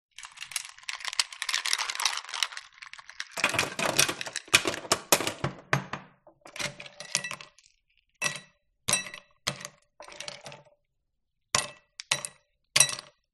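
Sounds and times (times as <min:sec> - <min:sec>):
ice cubes clinking: 0:00.1 - 0:10.7.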